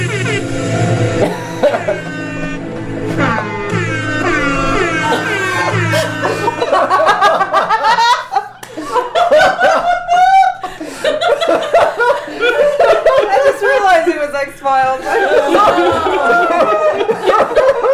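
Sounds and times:
air horn sound effect blasts: 0.0 - 6.9
people laughing: 1.2 - 14.2, 14.9 - 17.9.

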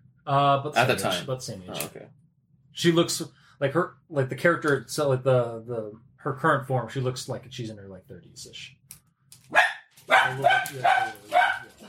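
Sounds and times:
speech: 0.2 - 2.2, 2.8 - 9.0, 10.2 - 11.4
dogs barking in a city: 9.5 - 11.8.

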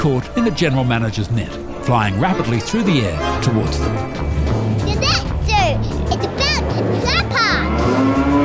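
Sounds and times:
speech: 0.0 - 8.3
sea cow mooing: 6.0 - 8.3.

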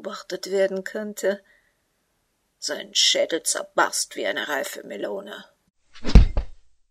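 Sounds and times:
speech: 0.0 - 1.6, 2.6 - 6.3
heavy thud of a body falling over a fence into a garden: 6.0 - 6.7.

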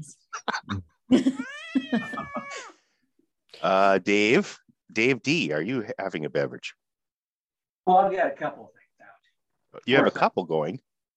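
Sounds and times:
speech: 0.0 - 2.1, 3.6 - 6.8, 7.9 - 8.8, 9.8 - 10.9
cat meowing with downward sliding pitch: 1.4 - 2.7.

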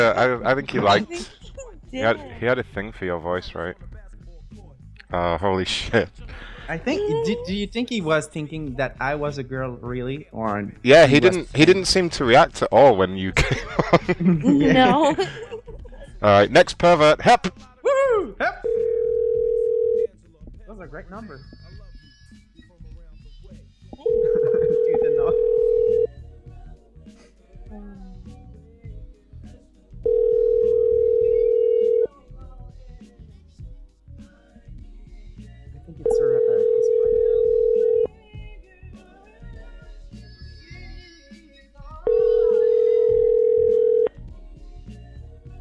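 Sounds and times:
automatic voice message: 0.0 - 2.8, 14.5 - 15.4, 24.0 - 26.1, 36.0 - 37.9, 42.1 - 43.7
speech: 0.0 - 18.8, 20.8 - 21.6
laughter: 13.4 - 16.3
phone line ringing on an outgoing call: 18.7 - 20.1, 24.0 - 26.1, 30.0 - 32.1, 36.0 - 38.1, 42.1 - 44.1.

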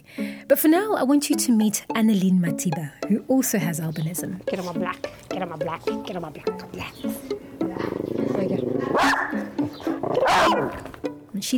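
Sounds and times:
speech: 0.5 - 11.5
pet dogs barking at home in Pretoria South Africa: 6.1 - 11.3.

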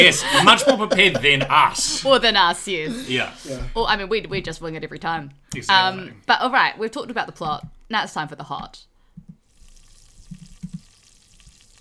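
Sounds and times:
laughter: 0.0 - 2.3
speech: 0.0 - 8.9
low thumps and pops: 7.3 - 7.9, 8.6 - 9.5, 10.2 - 11.0
food frying in a hot pan: 9.4 - 11.7.

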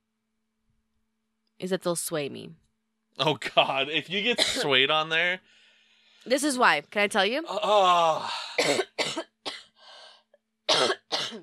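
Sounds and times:
speech: 1.6 - 5.6, 6.2 - 9.2
harsh coughing: 3.2 - 4.8, 8.2 - 9.7, 10.7 - 11.4
raspy drawn-out breath: 5.4 - 6.3, 9.8 - 10.3.

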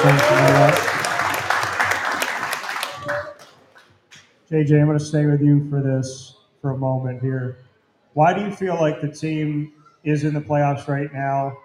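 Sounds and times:
crowd clapping for a team player: 0.0 - 4.3
speech: 4.5 - 11.6.

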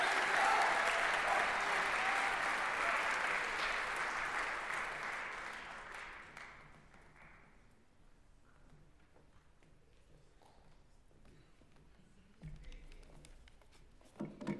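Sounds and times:
room full of people applauding: 0.0 - 7.4.

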